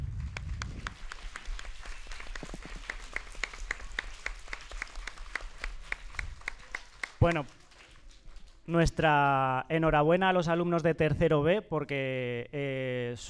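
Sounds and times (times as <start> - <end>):
school class clapping at an award presentation: 0.0 - 8.8
speech: 7.2 - 7.6, 8.7 - 13.2.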